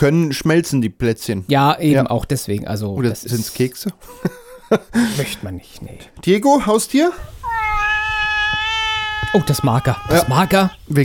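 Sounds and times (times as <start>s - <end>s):
speech: 0.0s - 7.4s, 9.3s - 11.0s
laughter: 4.0s - 5.2s
male cat giving a long drawn-out meow: 7.2s - 10.9s.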